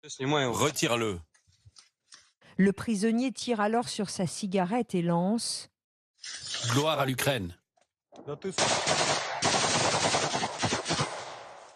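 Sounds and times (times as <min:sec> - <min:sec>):
speech: 0:00.0 - 0:01.3, 0:02.6 - 0:07.6, 0:08.2 - 0:09.0
sharp gunshots: 0:08.4 - 0:11.7
automatic weapons fire: 0:08.6 - 0:11.7.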